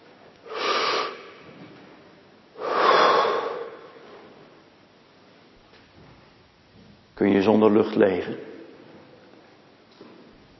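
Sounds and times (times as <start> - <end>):
children taking deep breaths in unison: 2.6 - 3.7
speech: 7.2 - 8.6.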